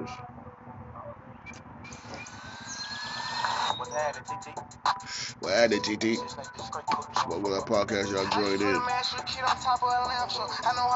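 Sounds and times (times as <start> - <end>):
speech: 0.0 - 0.4, 3.9 - 10.9
birds chirping outdoors: 1.2 - 6.3.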